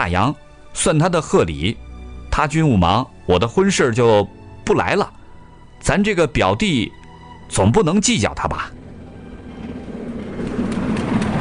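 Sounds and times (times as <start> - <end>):
speech: 0.0 - 1.8, 2.4 - 5.2, 5.8 - 8.8
train rumbling into a station in Shenyang: 7.2 - 11.3.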